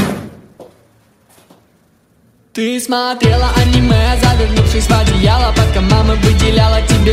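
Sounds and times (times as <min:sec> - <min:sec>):
door shutting with a solid thud: 0:00.0 - 0:00.5
speech: 0:02.6 - 0:07.1.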